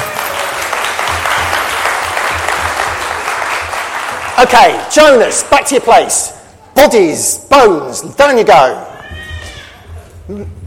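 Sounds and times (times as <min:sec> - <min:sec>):
room full of people applauding: 0:00.0 - 0:05.0
speech: 0:04.4 - 0:08.9.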